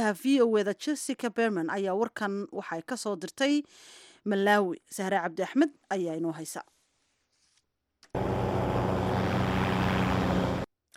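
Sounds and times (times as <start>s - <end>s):
speech: 0.0s - 6.8s
drone aircraft for delivering medicine and collecting blood samples in Malawi whirring: 8.1s - 10.7s.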